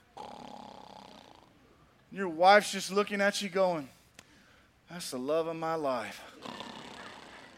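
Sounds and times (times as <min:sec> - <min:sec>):
man imitating snoring: 0:00.1 - 0:01.5, 0:06.4 - 0:07.5
speech: 0:02.1 - 0:04.0, 0:04.9 - 0:06.7.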